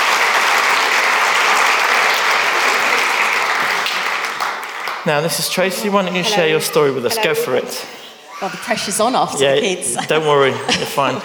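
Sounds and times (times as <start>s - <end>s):
crowd applauding: 0.0s - 7.0s
speech: 5.1s - 11.2s
laughter: 8.3s - 11.2s.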